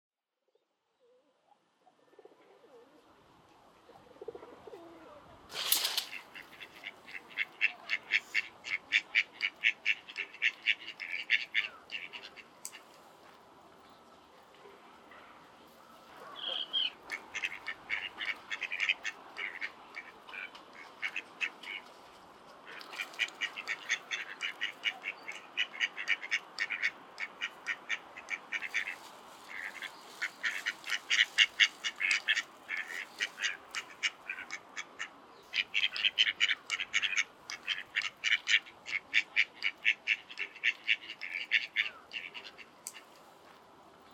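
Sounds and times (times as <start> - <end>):
ducks at Shinobazu Pond in Tokyo: 5.8 - 13.0, 16.1 - 21.9, 22.6 - 43.2.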